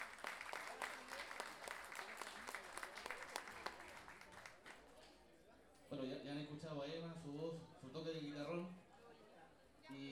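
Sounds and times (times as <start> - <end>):
audience applause at a national festival of the guitarrón: 0.0 - 4.8
speech: 5.9 - 8.8, 9.9 - 10.1.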